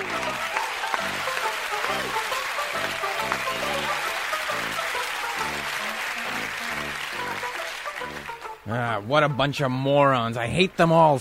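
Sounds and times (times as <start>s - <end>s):
crowd voices: 0.0s - 8.3s
large audience applauding: 0.0s - 8.7s
speech: 8.7s - 11.1s.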